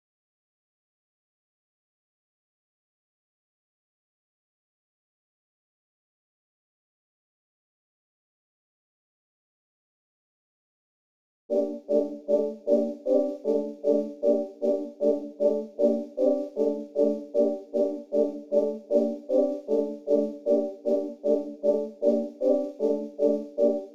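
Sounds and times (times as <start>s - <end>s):
soft trap chords melody loop in G minor: 11.5s - 23.9s.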